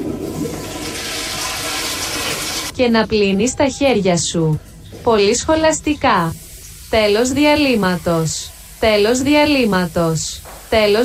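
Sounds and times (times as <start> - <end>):
toilet flushing: 0.0 - 2.8, 5.1 - 11.0
speech: 2.8 - 11.0.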